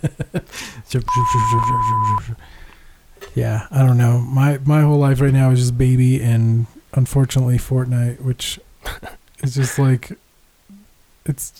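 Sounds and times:
speech: 0.9s - 2.7s, 3.4s - 10.2s, 11.2s - 11.5s
steady high censor bleep: 1.1s - 2.2s.

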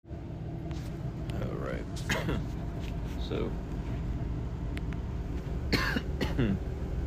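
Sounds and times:
low hum: 0.1s - 7.0s
person coughing after inhaling cigarette smoke: 2.0s - 2.4s, 5.7s - 6.6s
speech: 2.0s - 2.6s, 3.3s - 3.7s, 6.4s - 6.8s.

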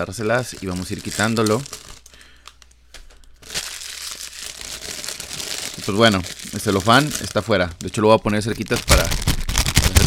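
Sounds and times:
speech: 0.0s - 2.0s, 5.9s - 9.4s
cellophane wrapping crinkling as it is pulled off a game box: 0.0s - 10.0s.

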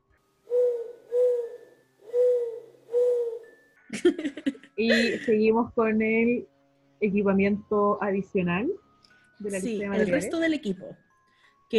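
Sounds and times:
owl hooting: 0.5s - 3.5s
laughter: 3.9s - 5.3s
speech: 4.0s - 8.8s, 9.4s - 11.0s.

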